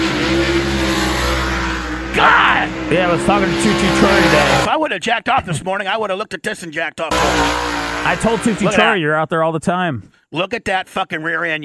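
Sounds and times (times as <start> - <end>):
race car engine revving at high speed during testing: 0.0 - 4.7, 7.1 - 8.9
speech: 2.9 - 11.6.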